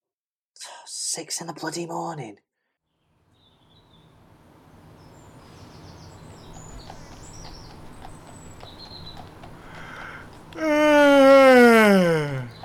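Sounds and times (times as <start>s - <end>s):
speech: 0.9s - 2.5s, 10.6s - 10.9s
faint birds chirping: 2.9s - 12.6s
person yawning: 10.6s - 12.6s.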